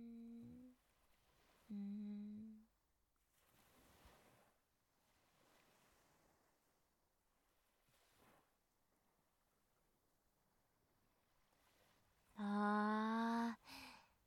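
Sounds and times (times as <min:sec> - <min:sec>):
soft steady wash of ocean waves: 0:00.1 - 0:02.6, 0:03.3 - 0:06.7, 0:07.4 - 0:08.4, 0:11.2 - 0:14.0.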